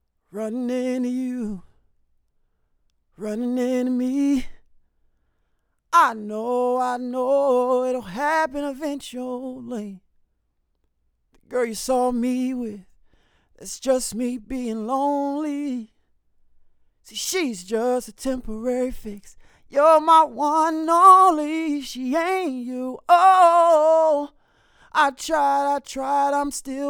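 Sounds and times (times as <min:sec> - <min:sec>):
male vocals recorded with FET microphone: 0:00.3 - 0:01.8, 0:03.2 - 0:04.7, 0:05.9 - 0:10.0, 0:11.4 - 0:13.0, 0:13.6 - 0:16.0, 0:17.0 - 0:26.8.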